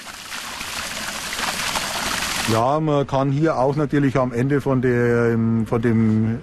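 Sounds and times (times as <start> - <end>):
water rushing out of a pipe being flushed to clean the line: 0.0 - 2.6
speech: 2.5 - 6.4.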